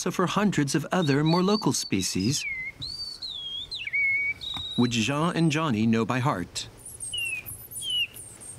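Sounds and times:
speech: 0.0s - 2.8s, 4.8s - 6.7s
faint high chirping: 0.8s - 5.6s, 6.8s - 8.5s
person whistling an imitation of a bullfinch call in the Baie de Somme: 0.9s - 5.0s, 6.8s - 8.5s.

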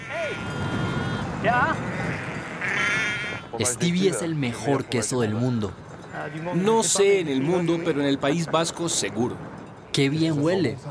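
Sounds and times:
flock of sheep bleating on mountain pasture: 0.0s - 3.6s, 6.1s - 8.2s
speech: 1.4s - 1.9s, 3.6s - 10.9s.

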